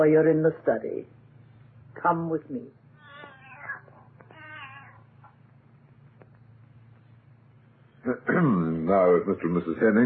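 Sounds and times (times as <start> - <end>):
speech: 0.0 - 1.2, 2.0 - 2.8, 8.0 - 10.0
low hum: 0.0 - 10.0
cat meowing: 3.0 - 5.4.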